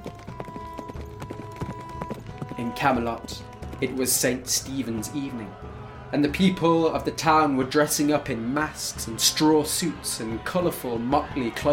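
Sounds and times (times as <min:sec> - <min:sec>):
horse hooves clip-clopping as horses are led out of a yard: 0:00.0 - 0:04.3
speech: 0:02.6 - 0:11.7.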